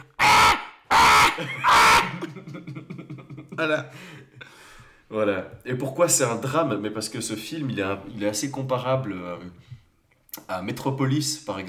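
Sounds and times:
voice imitating an electric alarm clock buzzing: 0.0s - 2.1s
laughter: 1.0s - 4.6s
speech: 1.4s - 2.8s, 3.6s - 4.2s, 5.1s - 9.8s, 10.4s - 11.6s.

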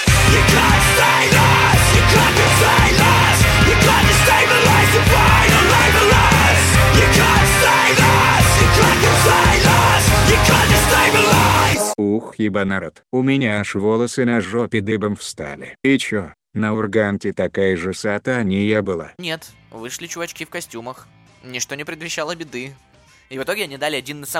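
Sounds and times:
loud dense heavy distorted guitar music: 0.0s - 12.0s
screamed vocals: 0.1s - 12.0s
speech: 0.3s - 0.8s, 12.4s - 24.3s.

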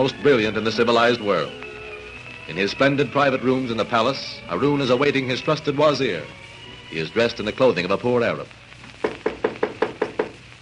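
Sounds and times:
speech: 0.0s - 1.6s, 2.5s - 8.6s
knocks on a door: 9.0s - 10.4s.

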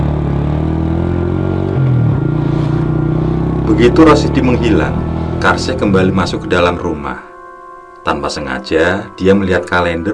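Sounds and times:
motorcycle engine running: 0.0s - 6.6s
speech: 3.7s - 7.3s, 8.0s - 10.1s.

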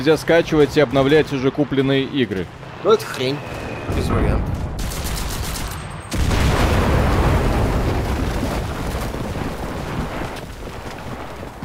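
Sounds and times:
speech: 0.0s - 4.7s
booming video game explosions: 3.6s - 11.6s
rapid overlapping video game gunfire: 4.8s - 6.7s.

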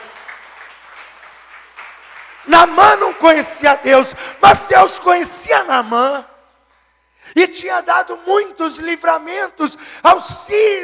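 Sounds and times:
audience applauding: 0.0s - 3.4s
speech: 2.4s - 6.3s, 7.3s - 10.8s.

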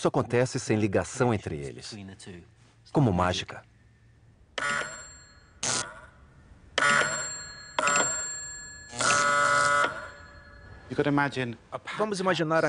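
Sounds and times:
speech: 0.0s - 3.7s, 4.6s - 4.9s, 10.9s - 12.6s
electric bell ringing on a wireless receiver: 4.6s - 6.2s, 6.8s - 11.4s.

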